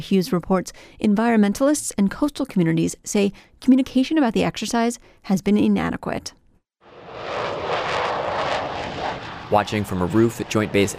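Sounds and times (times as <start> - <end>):
speech: 0.0 - 6.4, 9.5 - 10.9
military fighter jets taking off from an air base: 6.8 - 10.9.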